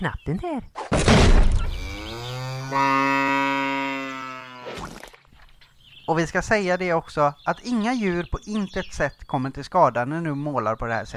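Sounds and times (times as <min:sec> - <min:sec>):
speech: 0:00.0 - 0:01.6, 0:02.7 - 0:03.1, 0:06.1 - 0:11.1
cow mooing: 0:01.8 - 0:04.8.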